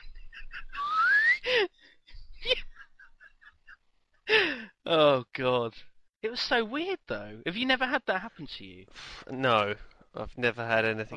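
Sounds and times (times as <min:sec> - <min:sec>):
laughter: 0:00.0 - 0:04.5
person whistling an upward glide imitating a slide whistle: 0:00.8 - 0:01.4
speech: 0:04.9 - 0:11.1.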